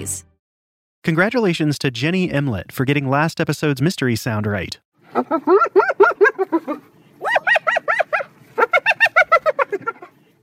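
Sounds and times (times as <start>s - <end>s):
speech: 0.0s - 0.3s, 1.0s - 7.8s
spotted hyena laughing: 5.1s - 10.4s.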